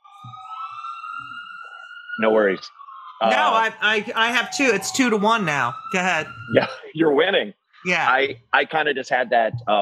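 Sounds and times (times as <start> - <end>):
emergency vehicle siren wailing: 0.0 - 9.8
speech: 2.2 - 9.8
laughter: 6.0 - 9.8.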